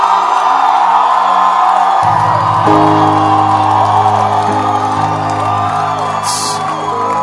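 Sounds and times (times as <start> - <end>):
large crowd shouting and cheering: 0.0 - 7.2
whoops: 0.0 - 7.2.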